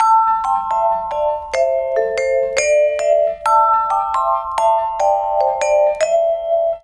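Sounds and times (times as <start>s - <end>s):
lounge music loop: 0.0s - 6.8s.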